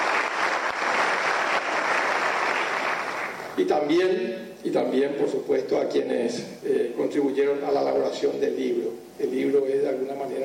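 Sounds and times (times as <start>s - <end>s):
audience applause: 0.0s - 3.6s
speech: 3.6s - 10.4s.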